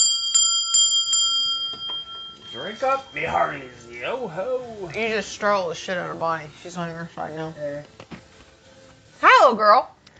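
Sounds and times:
bell ringing with a sustained metallic tone: 0.0s - 4.2s
speech: 2.5s - 8.1s, 9.4s - 9.9s.

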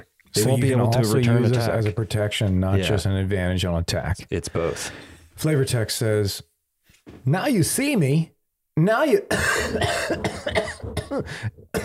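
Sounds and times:
speech: 0.0s - 6.5s, 7.1s - 11.8s
raspy coughs: 9.3s - 11.8s
throat clearing: 9.3s - 11.8s.

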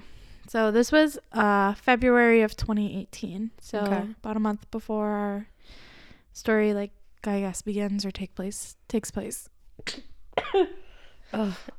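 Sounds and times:
speech: 0.5s - 11.7s
person coughing: 9.9s - 11.7s.

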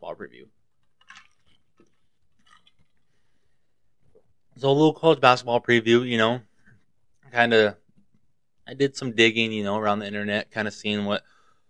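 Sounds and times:
speech: 0.2s - 0.6s, 4.6s - 6.5s, 7.3s - 7.8s, 8.7s - 11.3s
swallowing water: 0.8s - 3.4s
person sipping water: 0.8s - 4.4s
wet mouth sounds: 0.9s - 3.1s.

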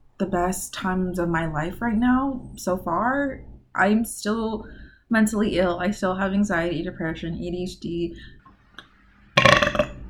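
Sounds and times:
speech: 0.2s - 8.4s
loud gurgling burp: 9.4s - 10.0s.

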